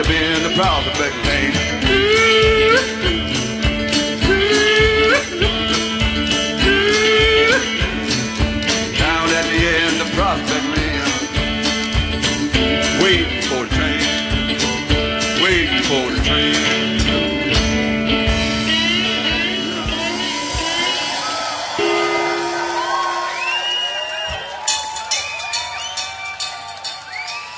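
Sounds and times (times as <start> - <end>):
speech: 0.0 - 1.6
live band playing at a 2011 festival in Oxfordshire UK: 0.0 - 27.5
festival crowd cheering and whooping: 19.7 - 27.5.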